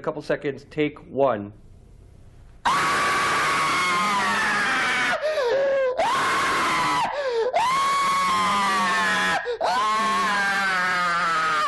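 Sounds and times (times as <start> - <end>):
speech: 0.0 - 1.6
man screaming at full force: 2.7 - 11.6
man's quick gasp for breath: 5.2 - 6.0, 7.1 - 7.6.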